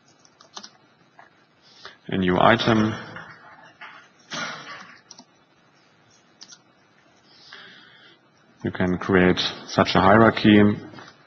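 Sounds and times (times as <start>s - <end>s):
typing on a computer keyboard: 0.1s - 0.8s, 5.0s - 5.3s
speech: 2.1s - 3.1s, 8.6s - 11.0s.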